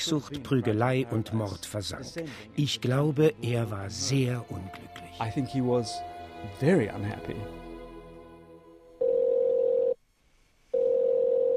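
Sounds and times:
speech: 0.0s - 7.6s
telephone dial tone while placing a call to Pitcairn Island: 9.0s - 10.0s, 10.8s - 11.5s.

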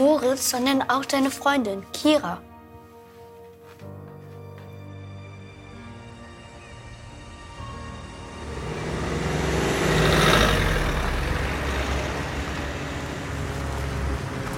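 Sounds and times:
speech: 0.1s - 2.5s
road noise: 7.4s - 14.5s
small van engine rumble: 7.8s - 14.5s.

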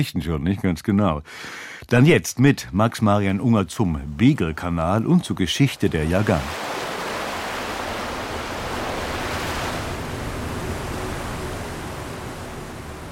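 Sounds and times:
speech: 0.0s - 6.7s
waves and spray splashing against the metal hull of a ferry in the Beagle Channel: 3.9s - 13.0s.

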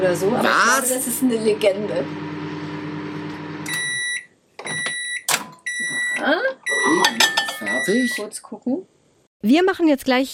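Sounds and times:
speech: 0.0s - 2.4s, 6.2s - 6.5s, 7.9s - 10.3s
microwave oven humming while heating: 0.0s - 8.2s
high electronic microwave beeps: 3.5s - 8.3s.

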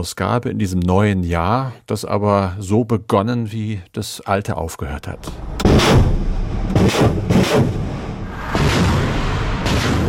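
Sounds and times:
speech: 0.0s - 7.8s
loud rumbling background: 5.2s - 10.0s
Russian artillery and rocket launcher fire booming in eastern Ukraine: 5.3s - 10.0s.

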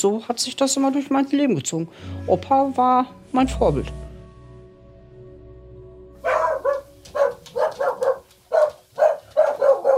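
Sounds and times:
speech: 0.0s - 4.0s
dogs barking: 6.2s - 9.9s.

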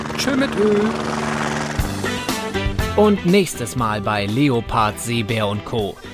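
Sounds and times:
helicopter engine droning whine: 0.0s - 4.0s
speech: 0.2s - 1.2s, 3.0s - 6.1s.

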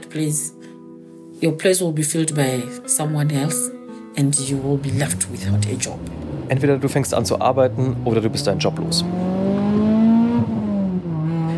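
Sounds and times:
speech: 0.1s - 0.6s, 1.4s - 9.4s
car engine humming as a woman drives off: 4.2s - 11.5s.

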